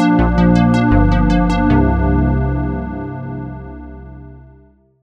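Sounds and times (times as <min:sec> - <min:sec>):
analog synthesizer percussion: 0:00.2 - 0:03.9.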